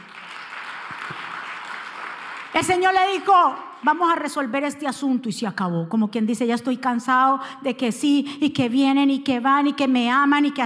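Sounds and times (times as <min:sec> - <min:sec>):
audience applauding: 0:00.0 - 0:03.3
speech: 0:02.5 - 0:10.6.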